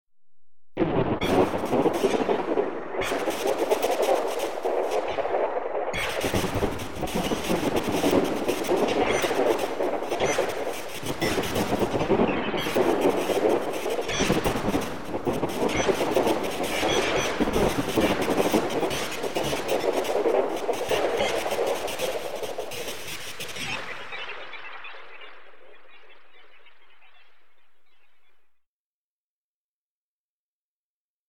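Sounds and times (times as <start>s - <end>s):
thunder in space: 0.8s - 25.8s.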